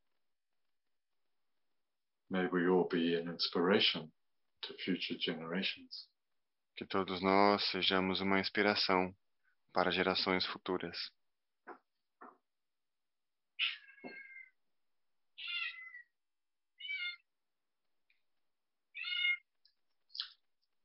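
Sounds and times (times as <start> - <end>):
speech: 2.3 - 6.1, 6.8 - 11.2, 13.6 - 14.2
cat meowing: 15.4 - 16.1, 16.8 - 17.3, 18.9 - 19.5.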